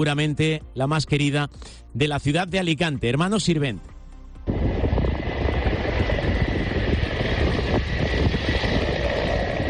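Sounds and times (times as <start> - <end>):
speech: 0.0 - 3.9
firefighting helicopter flying over burning building: 4.5 - 9.6
gusty wind buffeting the microphone: 4.5 - 9.6.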